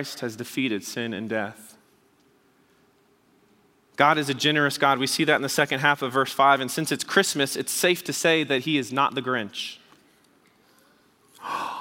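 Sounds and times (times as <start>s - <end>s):
speech: 0.0s - 1.8s, 4.0s - 9.8s
audience member gasping: 10.8s - 11.7s.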